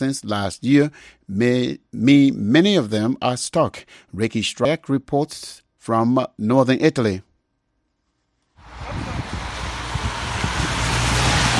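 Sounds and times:
speech: 0:00.0 - 0:07.3
cars speeding past on wet mountain road: 0:08.6 - 0:11.5
low rumble: 0:08.6 - 0:11.5.

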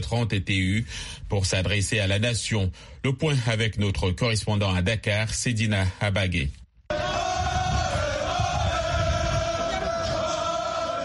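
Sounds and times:
speech: 0:00.0 - 0:07.2
huge crowd roaring and shouting in celebration: 0:06.9 - 0:11.0.

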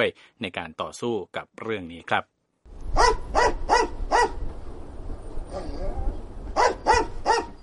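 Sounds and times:
speech: 0:00.0 - 0:02.3
female English Springer Spaniel sniffer dog barking at airport: 0:03.0 - 0:04.4, 0:06.6 - 0:07.6
English Springer Spaniel sniffer dog whining faintly: 0:05.5 - 0:07.6.

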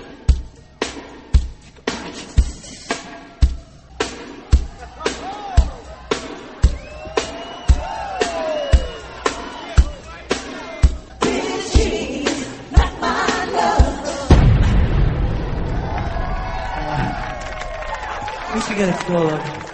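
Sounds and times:
loud driving dance beat of a pop song: 0:00.0 - 0:14.3
show staff whooping and cheering: 0:03.0 - 0:11.2, 0:15.2 - 0:19.7.

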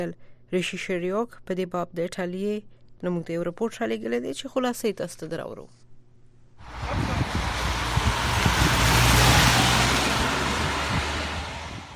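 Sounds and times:
speech: 0:00.0 - 0:05.8
cars driving fast on mountain roads in cold weather: 0:06.6 - 0:11.9
wind-like noise: 0:06.6 - 0:11.9.

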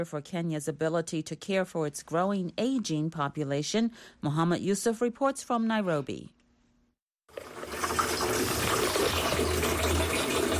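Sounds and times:
speech: 0:00.0 - 0:06.4
water running from a tap at a tap water kiosk in Kenya: 0:07.3 - 0:10.5.

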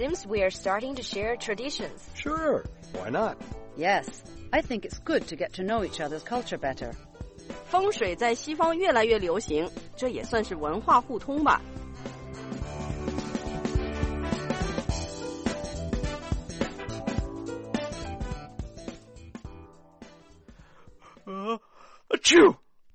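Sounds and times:
speech: 0:00.0 - 0:07.1, 0:07.7 - 0:11.7
steady music: 0:00.0 - 0:21.6
person sneezing: 0:21.2 - 0:22.6.

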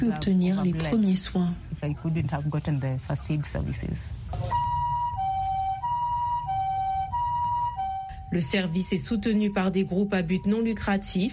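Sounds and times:
speech: 0:00.0 - 0:04.7, 0:08.3 - 0:11.3
low road rumble: 0:00.0 - 0:11.3
ambulance siren with two-tone hi-lo wail: 0:04.4 - 0:11.3.

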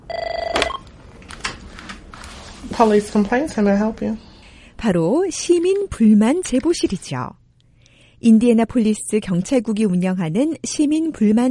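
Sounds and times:
telephone trilling electronic ring on an outgoing call: 0:00.0 - 0:00.9
phone line click: 0:00.1 - 0:00.8
speech: 0:02.8 - 0:07.4, 0:08.2 - 0:11.4.

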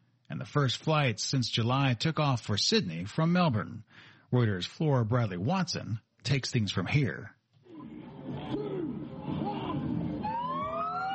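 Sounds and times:
speech: 0:00.4 - 0:07.4
sirens wailing as cars cross the border from New South Wales into Victoria: 0:08.2 - 0:11.1.

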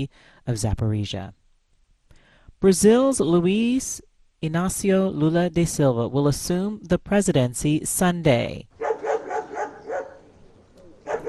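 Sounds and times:
speech: 0:00.0 - 0:01.4, 0:02.6 - 0:08.7
sniffer dogs barking while police search vehicles: 0:08.8 - 0:11.2.

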